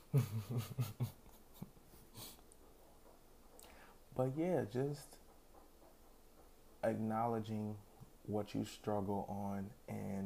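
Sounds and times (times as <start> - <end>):
speech: 0.1 - 1.2, 4.2 - 5.2, 6.8 - 10.2
female dog huffs and breaths in her sleep: 1.9 - 2.6.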